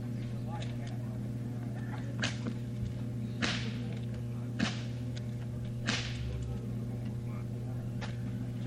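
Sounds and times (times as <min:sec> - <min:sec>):
faint murmur: 0:00.0 - 0:08.6
steady low hum: 0:00.0 - 0:08.6
12-foot whip cracking to cut straws: 0:02.2 - 0:02.5, 0:03.4 - 0:03.9, 0:04.6 - 0:05.0, 0:05.8 - 0:06.5.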